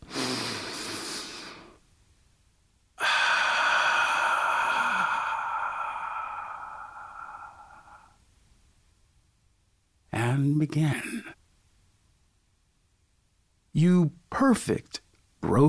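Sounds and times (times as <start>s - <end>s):
deep breath: 0.0s - 1.8s, 3.0s - 8.3s
speech: 10.6s - 11.2s, 14.5s - 15.6s.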